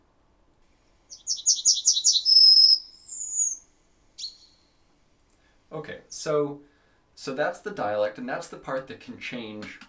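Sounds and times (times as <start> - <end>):
bird song with chip trill ending in two long whistled notes: 1.1 - 3.6, 4.2 - 4.6
brief single bird call: 1.1 - 3.6
speech: 5.7 - 9.8.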